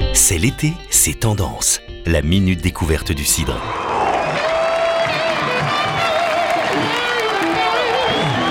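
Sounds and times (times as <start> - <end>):
speech: 0.1 - 4.0
summer festival crowd cheering and shouting before a concert: 3.5 - 8.4.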